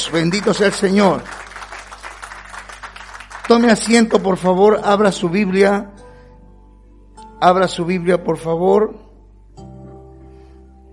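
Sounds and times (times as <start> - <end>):
crowd applauding: 0.0 - 4.8
speech: 0.1 - 1.4, 3.5 - 6.0, 7.4 - 9.0.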